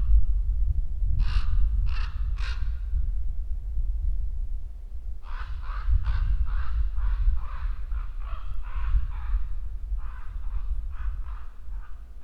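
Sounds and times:
low rumbling background noise: 0.0s - 12.2s
common raven croaking: 1.2s - 2.7s, 5.2s - 12.2s.

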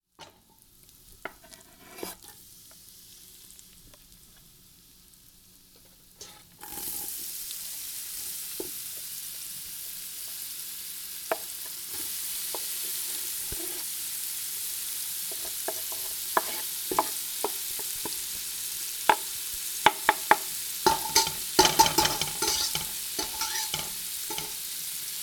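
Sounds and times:
frying: 0.0s - 25.2s.

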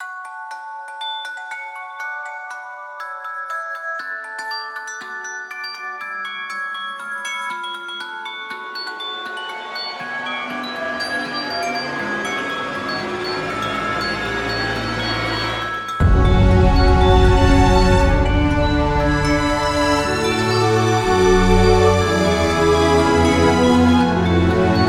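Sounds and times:
celesta in cinematic fairy tale trailer music: 0.0s - 24.8s
strings in cinematic fairy tale trailer music: 8.5s - 24.8s.

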